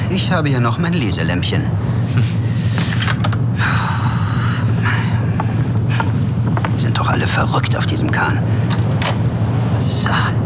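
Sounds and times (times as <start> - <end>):
steady low rumbling drone: 0.0 - 10.4
speech: 0.2 - 2.4, 7.0 - 8.8, 9.8 - 10.4
door on a ship pulled shut with knocks and clicks: 2.8 - 3.4, 8.7 - 9.2.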